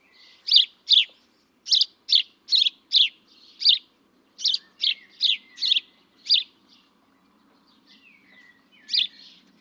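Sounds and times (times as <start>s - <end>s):
house sparrow Passer domesticus chirping: 0.4s - 1.1s, 1.7s - 6.6s, 8.8s - 9.4s.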